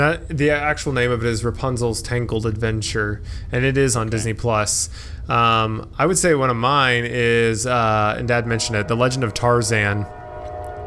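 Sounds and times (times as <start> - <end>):
speech: 0.0 - 10.2
train passing and rumbling: 0.0 - 10.8
train horn blare: 7.8 - 10.8.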